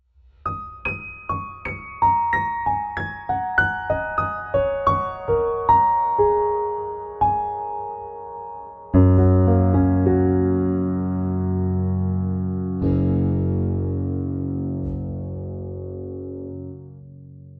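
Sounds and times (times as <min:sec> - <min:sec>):
piano without reverb: 0:00.0 - 0:17.5
guitar without reverb: 0:08.9 - 0:17.5.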